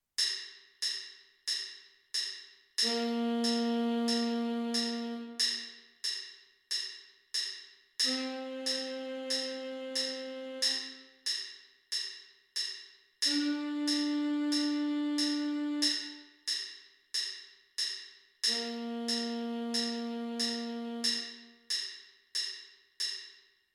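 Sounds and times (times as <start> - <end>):
band on parade: 2.8 - 5.6, 8.0 - 11.0, 13.3 - 16.2, 18.5 - 21.4
tenor saxophone in a parade band: 2.8 - 5.7, 8.0 - 11.2, 13.2 - 16.3, 18.5 - 21.7.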